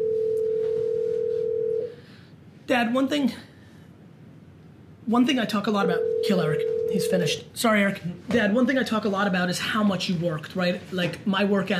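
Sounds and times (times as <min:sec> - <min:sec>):
phone line ring tone through earpiece on a call to British Columbia Canada: 0:00.0 - 0:02.0, 0:05.9 - 0:07.1
faint hum: 0:00.0 - 0:11.7
speech: 0:02.7 - 0:03.5, 0:05.1 - 0:11.7.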